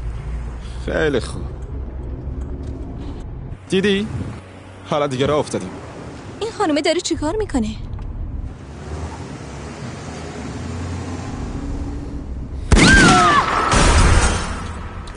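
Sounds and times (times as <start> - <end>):
road and engine rumble from a moving car: 0.0 - 15.1
speech: 0.8 - 1.6, 3.7 - 5.8, 6.6 - 7.9
sharp squealing tones: 12.7 - 14.1.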